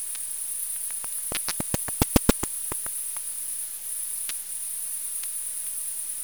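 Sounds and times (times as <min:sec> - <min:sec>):
bat echolocation pulses rendered as sharp dry clicks by a bat detector: 0:00.9 - 0:03.2
constant high electronic hiss: 0:00.9 - 0:03.2.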